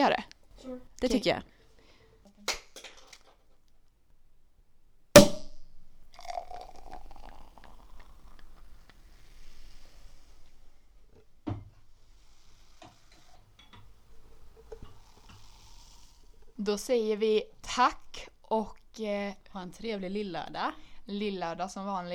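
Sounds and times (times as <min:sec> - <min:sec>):
speech: 0:00.0 - 0:01.6, 0:16.7 - 0:22.1
champagne bottle opened with sharp pop: 0:05.2 - 0:10.5
champagne fizzing and trickling as poured for a toast: 0:05.2 - 0:11.1, 0:11.9 - 0:21.2.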